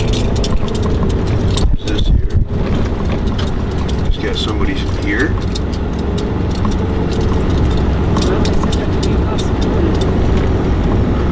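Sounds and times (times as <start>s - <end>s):
metallic clanks and clicks from heavy machinery: 0.0s - 10.5s
truck and backhoe engines rumbling: 0.0s - 11.2s.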